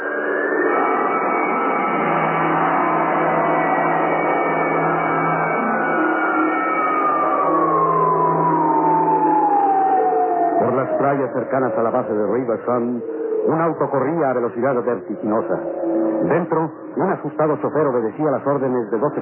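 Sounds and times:
general alarm sirens wailing throughout a base: 0.0 - 19.2
speech: 11.0 - 19.2.

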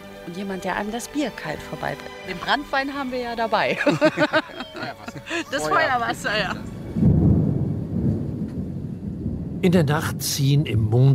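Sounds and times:
speech: 0.2 - 6.7, 9.6 - 11.1
laughter: 3.6 - 6.7
thunder rolling in a heavy nighttime thunderstorm over a lake: 6.0 - 11.1
dense low roar of a thunderstorm over a lake: 6.8 - 11.1.

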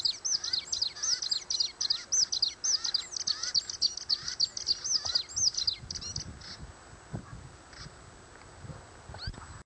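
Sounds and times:
long-tailed reed finch Donacospiza albifrons singing: 0.0 - 6.2
faint noise: 0.0 - 9.6.

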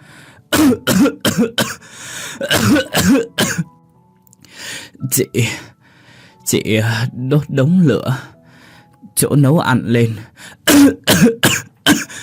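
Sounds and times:
person coughing harshly in a dilapidated house: 0.5 - 1.8, 2.4 - 3.7, 10.7 - 12.2
speech: 0.6 - 3.7, 5.0 - 5.8, 6.5 - 8.3, 9.2 - 12.2.

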